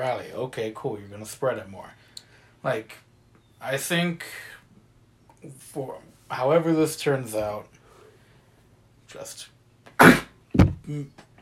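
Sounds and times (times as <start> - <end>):
speech: 0.0 - 2.0, 2.6 - 3.0, 3.6 - 4.6, 5.4 - 7.7, 9.1 - 10.2, 10.9 - 11.3
sneeze: 10.0 - 10.4.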